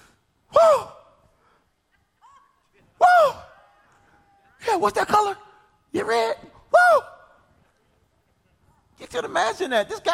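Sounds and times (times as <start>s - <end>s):
person imitating heavy excited breathing with a breathy gasp: 0.0s - 1.7s
speech: 4.8s - 7.1s, 9.1s - 10.1s.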